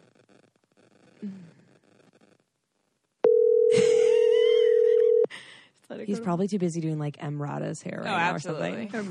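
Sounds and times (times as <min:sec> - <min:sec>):
speech: 0:01.2 - 0:01.6, 0:06.0 - 0:09.0
phone ringback tone: 0:03.2 - 0:05.3.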